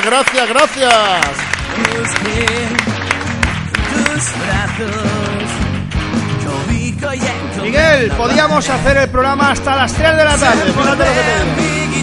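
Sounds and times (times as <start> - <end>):
speech: 0.0 - 3.0, 4.2 - 5.7, 6.8 - 12.0
dense audience applause for the falleros and falleras of a casa fallera: 0.0 - 6.3
musical backing: 0.0 - 12.0.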